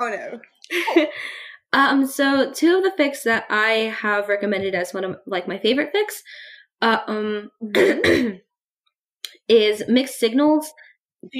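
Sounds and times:
speech: 0:00.0 - 0:08.4, 0:09.5 - 0:11.3
person coughing in rough throaty bursts: 0:07.7 - 0:08.4.

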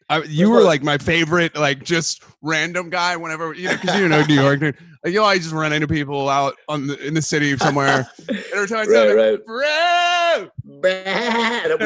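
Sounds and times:
speech: 0:00.1 - 0:11.8
laughter: 0:03.4 - 0:05.6, 0:06.8 - 0:09.7, 0:11.1 - 0:11.8
person imitating a sheep bleating: 0:08.9 - 0:11.8.

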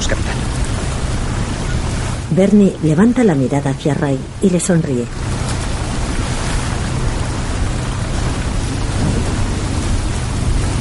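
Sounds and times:
heavy rain pouring: 0:00.0 - 0:10.7
speech: 0:02.4 - 0:05.2
deep rumbling thunder: 0:06.9 - 0:10.7.

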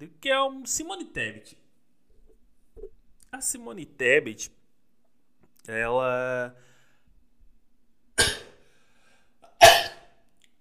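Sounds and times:
speech: 0:00.0 - 0:01.6, 0:03.4 - 0:04.6, 0:05.6 - 0:06.7
person coughing: 0:08.2 - 0:08.6, 0:09.4 - 0:10.2.

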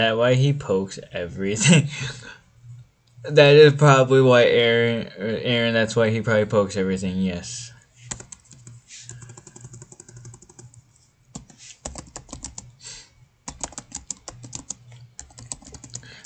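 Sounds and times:
speech: 0:00.0 - 0:02.4, 0:03.2 - 0:07.7
low steady hum: 0:00.0 - 0:16.2
typing on a computer keyboard: 0:08.1 - 0:12.7, 0:13.5 - 0:16.2.

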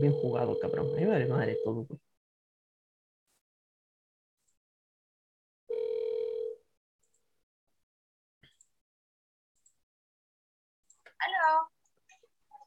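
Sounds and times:
outgoing telephone call ringing tone: 0:00.0 - 0:01.9, 0:05.7 - 0:06.6
voice answering the telephone: 0:00.0 - 0:02.0
speech: 0:00.0 - 0:02.1.

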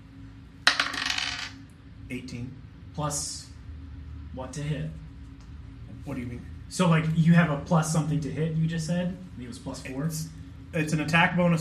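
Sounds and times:
twenty-sided die rolled on a table: 0:00.7 - 0:01.6
speech: 0:02.1 - 0:03.5, 0:04.4 - 0:05.0, 0:06.0 - 0:11.6.

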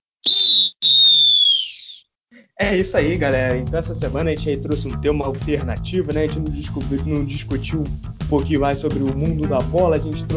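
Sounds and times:
referee's final whistle blasts: 0:00.2 - 0:02.0
speech: 0:02.6 - 0:10.3.

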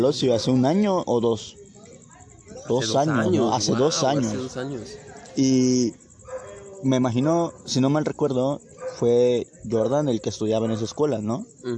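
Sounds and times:
speech: 0:00.0 - 0:01.6, 0:02.7 - 0:06.0, 0:06.8 - 0:11.7
steady hiss: 0:00.0 - 0:11.7
dog barking and whimpering outdoors: 0:06.2 - 0:06.8, 0:08.8 - 0:09.0.

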